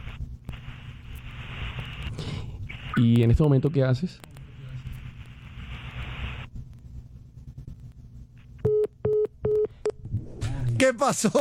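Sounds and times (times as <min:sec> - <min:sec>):
speech: 0:03.0 - 0:04.3, 0:10.9 - 0:11.3
telephone busy tone after a caller hangs up: 0:08.6 - 0:09.7.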